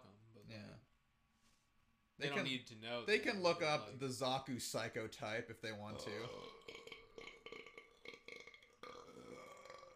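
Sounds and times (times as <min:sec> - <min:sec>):
speech: 0:02.2 - 0:06.9
long burp: 0:05.9 - 0:09.9.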